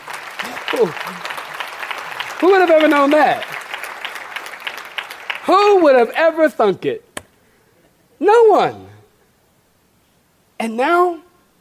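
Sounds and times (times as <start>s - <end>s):
crowd applauding: 0.0s - 6.5s
speech: 0.8s - 1.2s, 2.4s - 3.6s, 5.5s - 7.0s, 8.2s - 8.9s, 10.6s - 11.2s.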